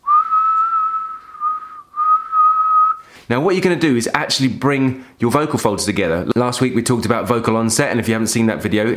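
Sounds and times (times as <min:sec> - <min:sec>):
person whistling a steady tone as part of a vocal exercise: 0:00.0 - 0:03.1
speech: 0:03.3 - 0:08.9.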